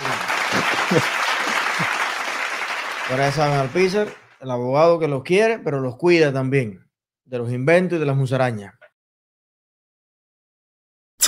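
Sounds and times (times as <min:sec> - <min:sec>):
laughter: 0:00.0 - 0:02.4
applause from a small group: 0:00.0 - 0:04.4
speech: 0:00.9 - 0:02.0, 0:03.1 - 0:08.8.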